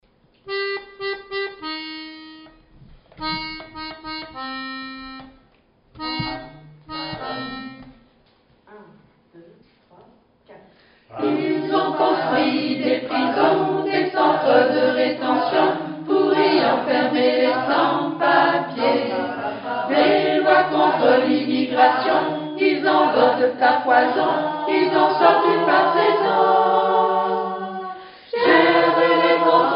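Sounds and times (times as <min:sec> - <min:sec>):
ensemble playing tutti: 0:06.2 - 0:08.0, 0:11.2 - 0:29.7.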